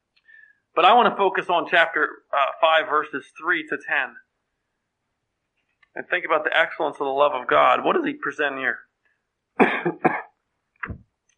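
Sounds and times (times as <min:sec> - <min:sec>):
speech: 0:00.8 - 0:04.2, 0:06.0 - 0:08.9, 0:09.6 - 0:10.1
harsh dry coughing: 0:09.6 - 0:10.3.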